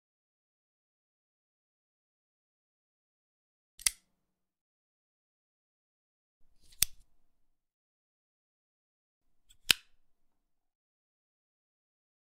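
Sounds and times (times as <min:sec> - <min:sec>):
flick knife: 0:03.8 - 0:04.1, 0:06.4 - 0:07.2, 0:09.4 - 0:10.1.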